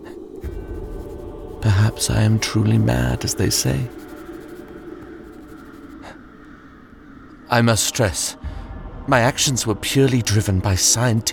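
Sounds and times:
pen scratching across paper: 0.4s - 6.2s
speech: 1.6s - 4.0s, 7.5s - 11.3s.

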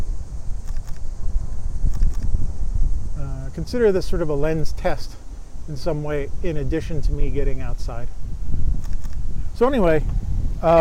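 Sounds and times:
gusty low wind rumble outdoors: 0.0s - 10.7s
steady high-pitched insect drone: 0.0s - 10.7s
faint clicks: 0.6s - 1.1s, 1.9s - 2.3s, 8.8s - 9.2s
speech: 3.6s - 8.3s, 9.6s - 10.7s.

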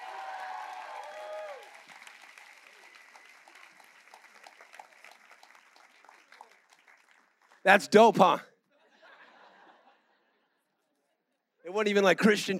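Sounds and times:
crowd shouting and cheering: 0.0s - 1.8s
crowd applause: 0.0s - 8.2s
speech: 7.6s - 8.5s, 11.8s - 12.5s
laughter: 8.7s - 10.6s.

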